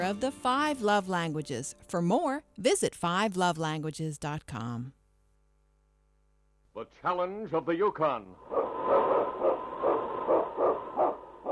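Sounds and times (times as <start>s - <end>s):
speech: 0.0s - 5.0s, 6.8s - 8.6s
lead sled dog barking: 8.5s - 11.5s.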